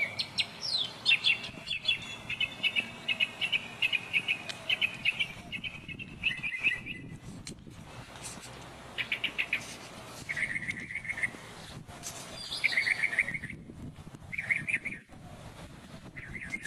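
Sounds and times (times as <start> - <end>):
Northern mockingbird singing: 0.0 - 7.2, 9.0 - 11.4, 12.4 - 13.7, 14.3 - 15.1, 16.0 - 16.6.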